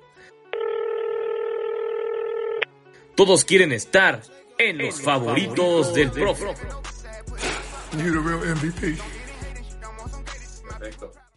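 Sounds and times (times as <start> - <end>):
electronic telephone dialing tone: 0.6 - 2.7
speech: 3.2 - 6.9, 7.9 - 9.2.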